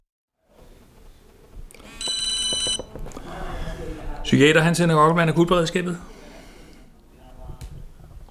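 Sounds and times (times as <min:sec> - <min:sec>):
guests chatting faintly: 0:00.5 - 0:08.2
phone ringing with an incoming call at home: 0:01.8 - 0:03.2
speech: 0:04.3 - 0:06.1.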